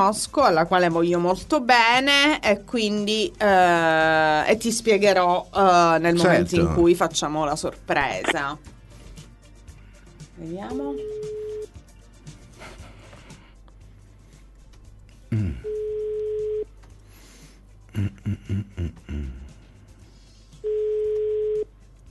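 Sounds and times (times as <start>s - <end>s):
speech: 0.0s - 8.7s, 10.4s - 11.4s, 18.0s - 19.1s
telephone ringback tone while a call waits to be answered: 10.9s - 11.7s, 15.7s - 16.7s, 20.6s - 21.7s.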